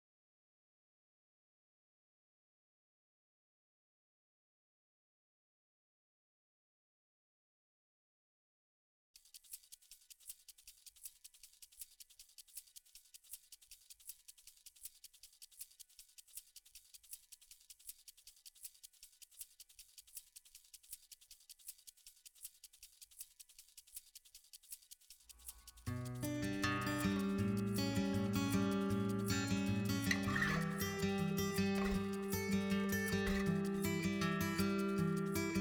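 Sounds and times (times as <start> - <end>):
acoustic percussion: 9.2 - 35.5.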